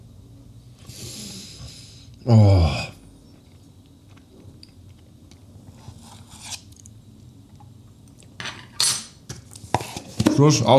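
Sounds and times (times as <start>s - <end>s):
speech: 2.2s - 2.8s, 10.4s - 10.7s
spoon scraping and clinking against a dish while eating ice cream: 5.8s - 6.7s.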